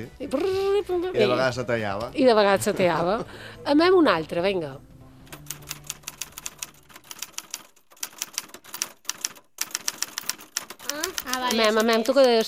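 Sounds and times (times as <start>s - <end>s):
speech: 0.0s - 4.9s, 11.5s - 12.4s
mechanical typewriter keystrokes: 5.3s - 12.4s.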